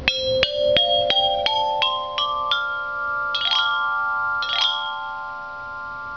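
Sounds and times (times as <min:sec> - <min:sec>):
brass pipe tube chime: 0:00.0 - 0:06.1.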